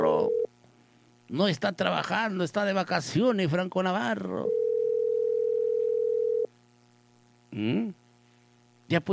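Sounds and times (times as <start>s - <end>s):
telephone ringing unanswered: 0.0s - 0.5s, 4.4s - 6.5s
faint low hum: 0.0s - 9.1s
speech: 1.3s - 4.6s, 7.5s - 8.0s, 8.9s - 9.1s.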